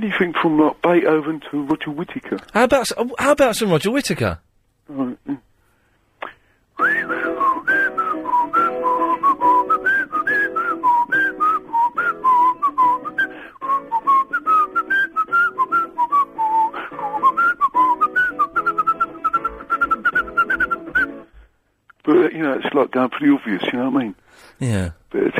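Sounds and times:
speech: 0.0 - 5.4, 22.2 - 25.3
person whistling a lilting tune: 6.8 - 21.2.

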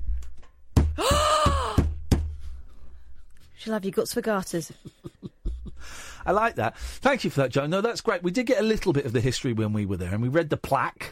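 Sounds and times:
headphones banged against something hard: 0.7 - 2.4
speech: 3.6 - 5.0, 6.3 - 11.1.

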